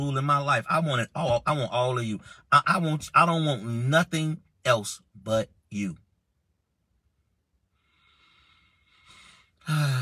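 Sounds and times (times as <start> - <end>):
speech: 0.0 - 6.0, 9.7 - 10.0
man taking a deep breath: 7.7 - 10.0.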